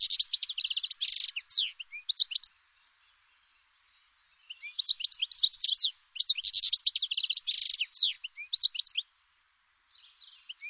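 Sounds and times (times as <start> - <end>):
bird giving fast high-pitched chirps and buzzy trilled notes: 0.0 - 2.6, 4.5 - 9.1.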